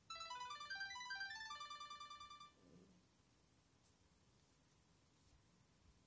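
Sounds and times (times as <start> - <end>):
Qtek phone ringtone: 0.0 - 2.6.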